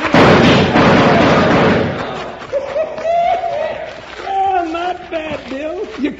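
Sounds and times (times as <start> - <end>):
gunfire in a shootout: 0.0 - 2.4
laughter: 2.0 - 4.7.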